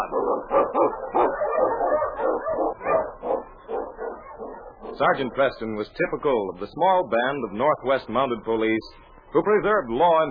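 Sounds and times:
husky Eskimo lead sled dog barking excitedly: 0:00.0 - 0:05.0
speech: 0:05.0 - 0:10.3.

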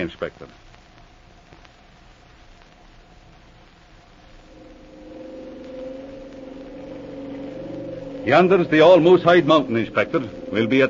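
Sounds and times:
speech: 0:00.0 - 0:00.7, 0:08.2 - 0:10.8
police motor boat engine running: 0:04.5 - 0:10.8.

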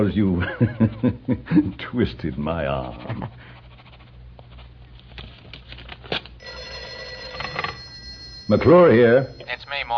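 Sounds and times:
speech: 0:00.0 - 0:03.6, 0:08.5 - 0:09.9
laughter: 0:00.3 - 0:01.8
telephone bell ringing: 0:06.4 - 0:09.9.

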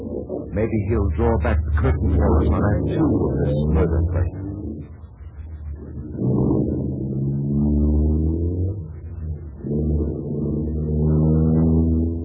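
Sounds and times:
car engine pulling away and accelerating: 0:00.0 - 0:12.2
speech: 0:00.6 - 0:04.4.

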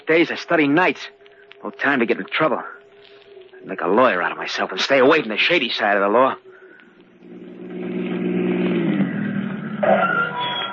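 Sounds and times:
speech: 0:00.1 - 0:02.8, 0:03.6 - 0:06.5
car engine revving: 0:07.1 - 0:10.7.

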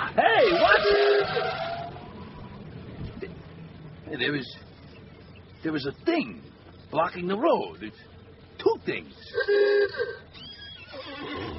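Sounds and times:
low rough noise: 0:00.0 - 0:11.5
speech: 0:04.2 - 0:04.7, 0:05.6 - 0:08.1, 0:08.8 - 0:10.2, 0:11.1 - 0:11.5
horse covered by an awning-like tent whinnying: 0:09.3 - 0:11.5.

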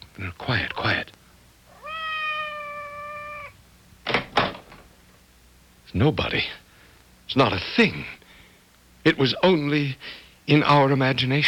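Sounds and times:
speech: 0:00.2 - 0:01.2, 0:05.9 - 0:06.6, 0:07.3 - 0:08.2, 0:09.0 - 0:11.4
cat meowing outside a door: 0:01.7 - 0:03.6.

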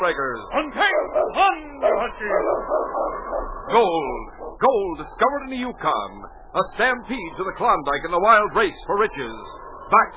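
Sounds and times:
speech: 0:00.0 - 0:01.4, 0:02.0 - 0:10.1
sled lead dog barking and yipping in the Yukon: 0:00.5 - 0:03.6.

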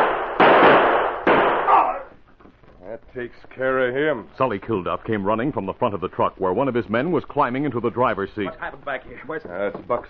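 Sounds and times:
gunshots fired point blank at a guard in a radio drama: 0:00.0 - 0:02.1
speech: 0:03.0 - 0:10.0.

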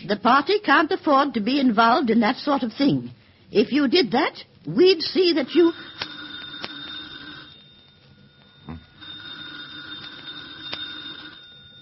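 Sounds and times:
speech: 0:00.1 - 0:06.1
telephone ringing with a shrill bell tone: 0:05.2 - 0:11.8.

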